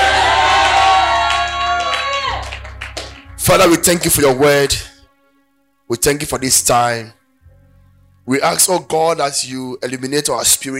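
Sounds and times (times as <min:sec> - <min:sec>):
congregation shouting amen: 0:00.0 - 0:02.6
speech: 0:03.5 - 0:04.9, 0:05.9 - 0:07.2, 0:08.2 - 0:10.7.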